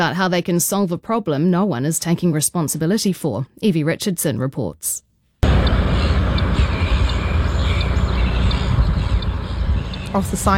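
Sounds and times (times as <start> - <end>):
speech: 0.0 - 5.1, 10.1 - 10.5
flock of many gulls squawking: 5.4 - 10.5.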